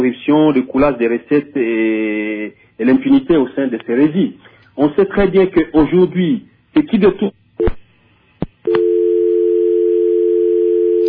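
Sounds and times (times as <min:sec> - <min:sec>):
speech: 0:00.0 - 0:07.4
telephone dial tone after a caller's line dropped: 0:08.7 - 0:11.0.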